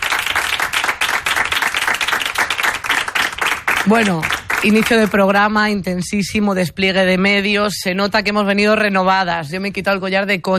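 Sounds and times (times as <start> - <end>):
crowd applauding: 0.0 - 5.2
speech: 3.8 - 10.5.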